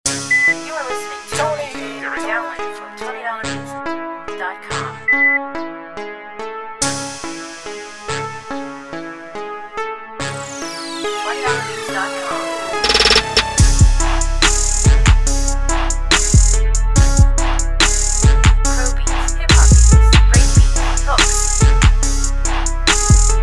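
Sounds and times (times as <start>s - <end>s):
trap beats: 0.1s - 2.7s, 11.7s - 23.4s.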